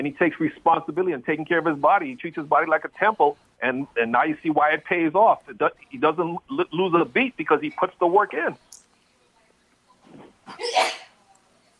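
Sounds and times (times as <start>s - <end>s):
speech: 0.0s - 8.8s
woman sneezing: 10.4s - 11.2s.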